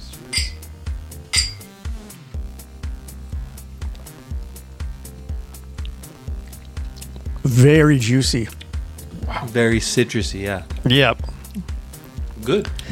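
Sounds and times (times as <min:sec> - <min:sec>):
rhythmic music track with a thumping bass beat: 0:00.0 - 0:12.9
glasses clinking in a toast with a tangerine drink: 0:00.3 - 0:00.7, 0:01.3 - 0:01.8
speech: 0:07.4 - 0:08.6, 0:09.5 - 0:11.7, 0:12.5 - 0:12.9.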